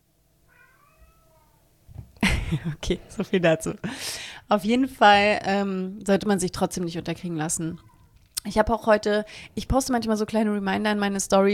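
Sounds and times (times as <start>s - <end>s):
domestic cat meowing: 0.5s - 1.7s, 7.8s - 8.2s
speech: 2.5s - 11.5s.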